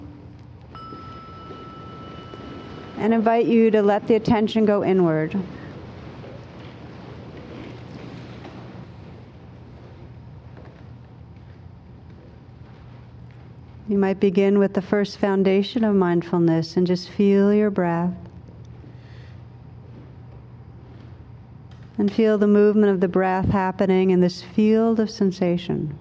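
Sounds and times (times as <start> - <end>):
low steady hum: 0.0 - 25.9
meditation bell struck and ringing: 0.7 - 4.0
speech: 3.0 - 5.6, 14.0 - 18.3, 22.0 - 25.9.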